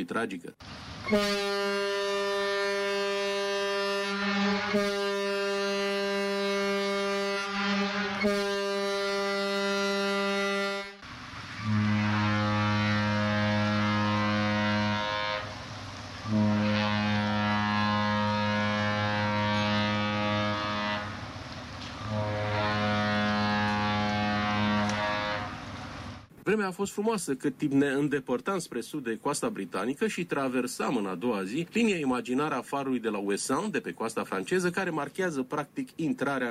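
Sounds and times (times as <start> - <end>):
speech: 0.0 - 2.0, 4.2 - 5.0, 8.2 - 8.5, 26.5 - 36.4
ship horn blasts with mid-pitched tone: 1.0 - 26.3.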